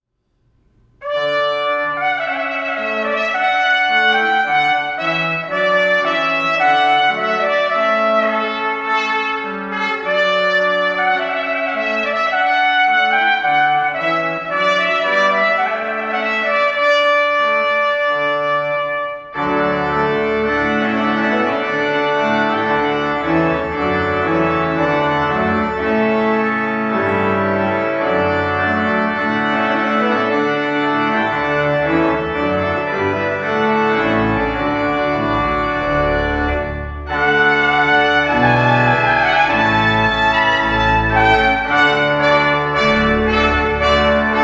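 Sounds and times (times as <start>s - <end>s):
organ playing: 0.6s - 44.4s.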